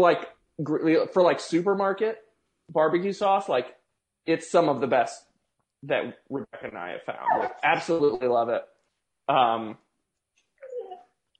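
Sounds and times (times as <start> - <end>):
speech: 0.0 - 8.7, 9.3 - 9.8
dog whining: 7.2 - 8.2.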